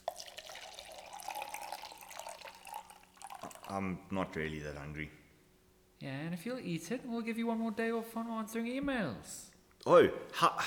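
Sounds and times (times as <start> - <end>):
water pouring into a container: 0.0 - 3.8
speech: 3.7 - 5.2, 6.0 - 10.6.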